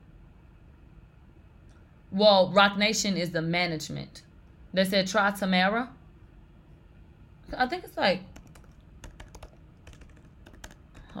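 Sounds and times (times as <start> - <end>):
speech: 2.1 - 6.0, 7.5 - 8.3
typing on a computer keyboard: 8.3 - 11.1.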